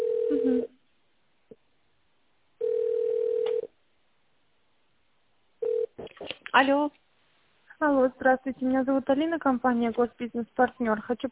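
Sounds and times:
telephone ringback tones as a call is transferred to reception: 0.0s - 0.7s, 2.6s - 3.7s, 5.6s - 5.9s
speech: 6.6s - 7.0s, 7.8s - 11.3s.

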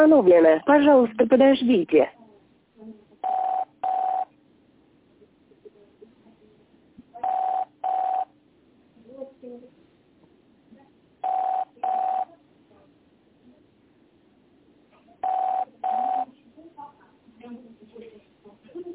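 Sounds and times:
speech: 0.0s - 2.2s
faint low noise: 0.0s - 18.9s
telephone keypad dialing tones: 3.2s - 4.3s, 7.2s - 8.3s, 11.2s - 12.3s, 15.2s - 16.3s.

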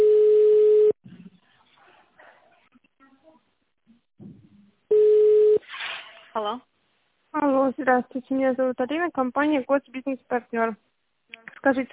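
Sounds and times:
telephone tone during call forwarding: 0.0s - 1.0s, 4.9s - 5.6s
speech: 6.4s - 6.7s, 7.7s - 10.9s, 11.6s - 11.9s.

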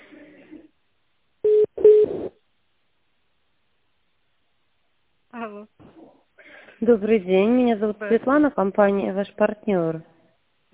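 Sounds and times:
electronic beeps on a phone line as a call is transferred: 1.5s - 2.3s
speech: 6.8s - 10.1s.

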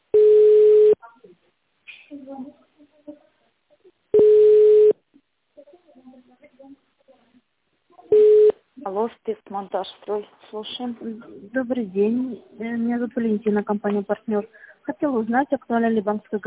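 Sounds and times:
telephone ringback tone while a call connects: 0.2s - 1.0s, 4.2s - 5.0s, 8.1s - 8.5s
telephone line noise: 4.2s - 5.0s
speech: 9.0s - 16.4s.

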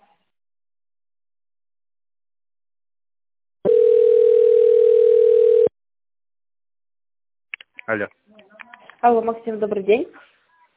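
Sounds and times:
mid-pitched electronic telephone beep as a call is connected and transferred: 3.7s - 5.7s
speech: 7.9s - 10.3s.

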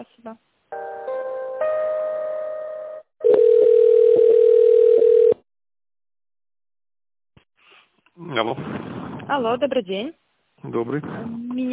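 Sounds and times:
speech: 0.0s - 0.5s, 8.4s - 11.7s
electronic telephone tones while a call is transferred: 3.2s - 5.4s.

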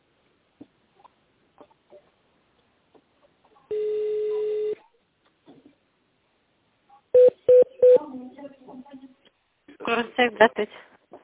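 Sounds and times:
steady phone line tone: 3.7s - 4.8s, 7.2s - 8.0s
touch-tone keypad beeps dialing an extension on an automated phone line: 7.2s - 8.0s
speech: 10.2s - 10.9s.

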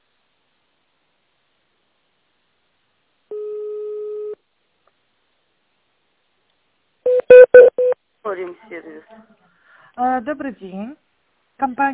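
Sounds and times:
steady telephone line beep: 7.1s - 8.0s
speech: 8.3s - 9.4s, 10.0s - 11.0s, 11.6s - 11.9s.

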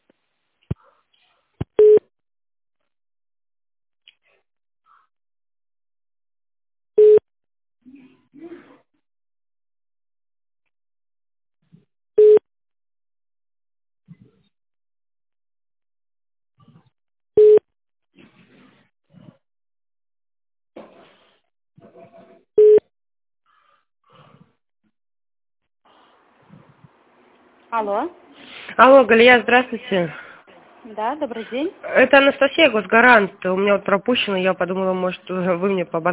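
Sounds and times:
telephone line tone beeps while a call is being transferred: 1.8s - 2.0s, 17.4s - 17.6s, 22.6s - 22.8s
speech: 27.7s - 28.2s, 28.8s - 30.2s, 30.8s - 36.1s.

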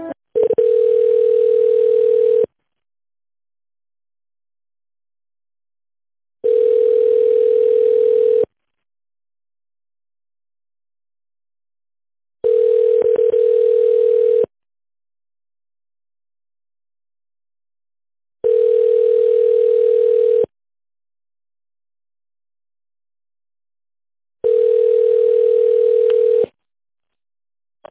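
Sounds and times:
buzzy harmonic telephone line tone during call transfer: 0.4s - 2.5s, 6.4s - 8.5s, 12.4s - 14.5s, 18.4s - 20.5s, 24.4s - 26.5s.

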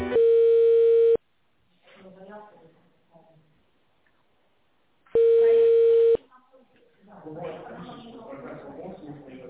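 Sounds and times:
narrow-band phone audio: 0.1s - 1.2s, 5.1s - 6.3s
telephone line beeps as a business call is transferred: 0.1s - 1.2s, 5.2s - 6.2s.

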